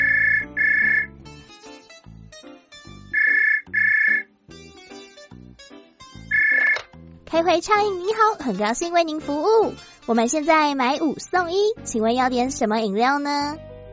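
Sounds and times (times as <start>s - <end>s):
telephone ringing for an incoming call to a drink shop in Tainan: 0.0s - 1.2s, 3.1s - 4.3s, 6.3s - 6.9s
bright plucky music: 0.0s - 13.9s
speech: 7.3s - 13.7s.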